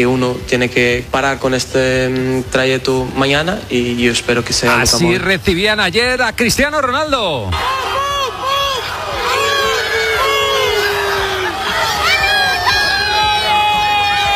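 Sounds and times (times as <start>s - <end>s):
speech: 0.0s - 8.0s
large crowd of Croatian football fans shouting and cheering: 6.8s - 14.3s.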